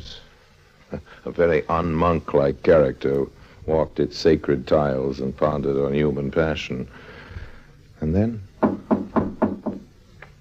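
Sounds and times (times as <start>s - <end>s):
speech: 0.9s - 7.1s, 8.0s - 8.5s
firm knocks on a wooden door: 8.6s - 9.9s.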